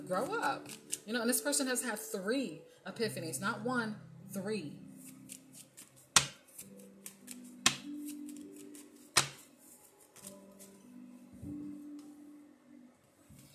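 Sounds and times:
speech: 0.1 - 4.8
card handling rustling: 0.3 - 1.1, 5.0 - 10.9
cards dropping: 0.6 - 1.1, 5.3 - 9.5.

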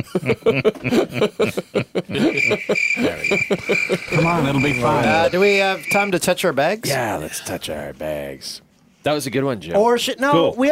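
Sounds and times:
speech: 0.0 - 2.3, 4.3 - 10.7
people laughing and chuckling: 0.0 - 6.1
crickets chirping sound effect: 2.2 - 6.2.

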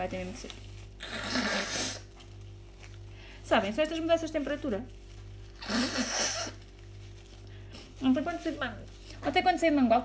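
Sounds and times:
speech: 0.0 - 1.4, 3.5 - 5.0, 8.0 - 10.0
low steady hum: 0.0 - 10.0
person with a runny nose blowing their nose: 1.0 - 2.1, 5.6 - 6.6.

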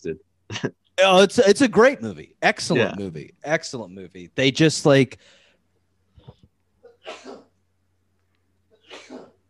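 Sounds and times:
speech: 0.0 - 5.4
person sneezing: 6.9 - 7.6, 8.8 - 9.4.

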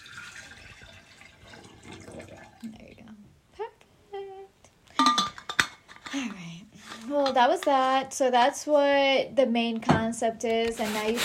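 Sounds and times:
water poured out of a copper water bottle: 0.0 - 2.7
clinks of glass or metal: 5.0 - 5.8
speech: 7.1 - 11.2.

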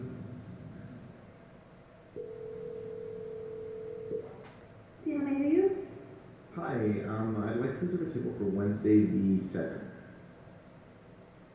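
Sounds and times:
faint noise: 0.0 - 11.5
ringback tone of an outgoing phone call to a small restaurant: 2.2 - 4.3
speech: 6.8 - 9.9.

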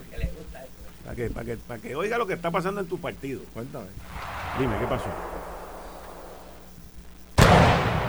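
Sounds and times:
speech: 1.1 - 5.6
heavy cannon blast: 4.0 - 6.8, 7.4 - 8.0
low rumble: 4.0 - 6.8.

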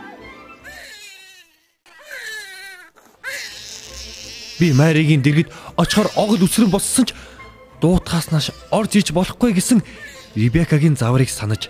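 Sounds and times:
newborn baby crying just after birth in Bethlehem: 0.6 - 5.1, 5.7 - 7.2, 9.9 - 10.5
speech: 4.6 - 11.6.

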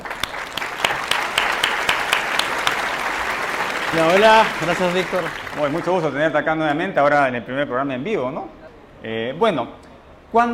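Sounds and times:
sharp louder claps: 0.0 - 6.4
audience at a live event clapping to welcome a speaker: 0.0 - 6.6
speech: 3.9 - 10.5.

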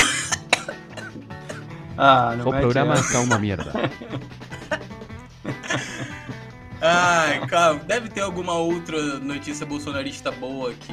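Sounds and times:
dry harsh coughs: 0.0 - 1.7, 3.0 - 3.9
speech: 2.0 - 4.8, 6.8 - 10.9
laughter: 2.9 - 7.9.

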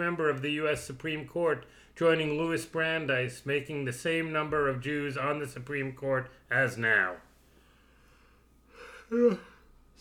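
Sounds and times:
speech: 0.0 - 7.3, 9.1 - 10.0
person yawning: 8.8 - 9.7.

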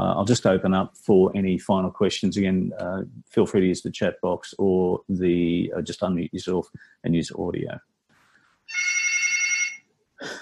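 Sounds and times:
speech: 0.2 - 7.9
hotel room telephone ringing with electronic trill: 8.7 - 9.9.

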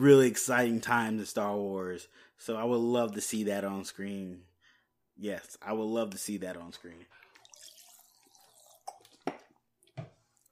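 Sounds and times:
speech: 0.0 - 4.5, 5.2 - 7.2
person gulping water: 7.2 - 10.5.

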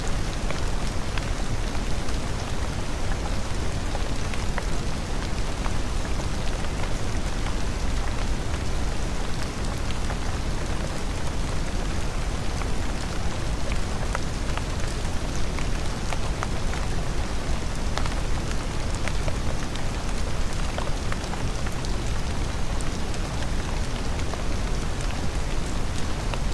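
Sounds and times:
gentle rain hiss: 0.0 - 26.5.

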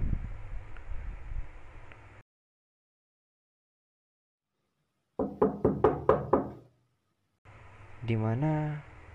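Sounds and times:
rushing wind-like noise: 0.0 - 1.8
sharp knocks: 5.2 - 6.7
speech: 5.3 - 5.7, 8.0 - 8.9.

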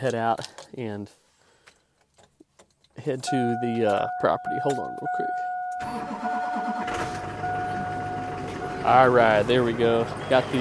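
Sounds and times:
speech: 0.0 - 1.2, 3.0 - 7.2, 8.8 - 10.5
steady electronic chime tone: 3.3 - 8.9
diesel truck engine cranking and starting to warm up on a frosty morning: 4.6 - 10.5.

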